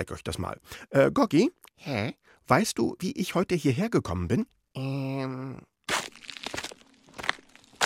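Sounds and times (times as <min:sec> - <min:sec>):
speech: 0:00.0 - 0:05.7
crunchy footsteps at an uneven pace: 0:05.8 - 0:07.8.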